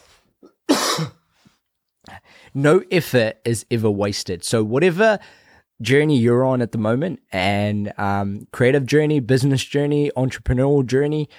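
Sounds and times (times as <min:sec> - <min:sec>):
sharp harsh cough: 0:00.4 - 0:01.2
speech: 0:02.5 - 0:11.3.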